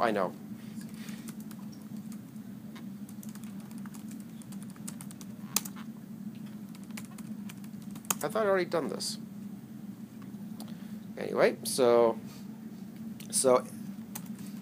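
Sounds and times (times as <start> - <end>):
speech: 0.0 - 0.4, 8.2 - 9.2, 11.3 - 12.4, 13.4 - 13.8
computer keyboard typing: 1.2 - 2.3, 3.1 - 5.9, 6.5 - 8.3, 14.1 - 14.6.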